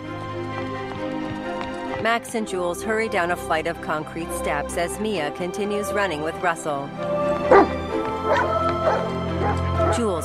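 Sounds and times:
steady tonal background: 0.0 - 10.2
speech: 2.0 - 10.2
dogs yipping and barking while running along a pier: 7.4 - 10.0.

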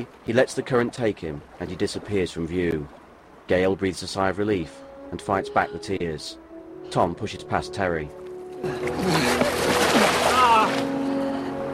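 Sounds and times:
speech: 0.0 - 9.3
person wading through water toward a boat: 8.2 - 11.7.

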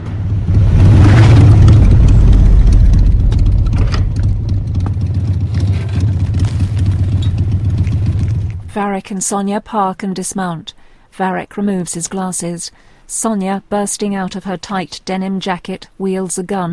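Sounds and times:
motorcycle engines rumbling through a deserted town: 0.0 - 8.7
speech: 8.8 - 16.7.

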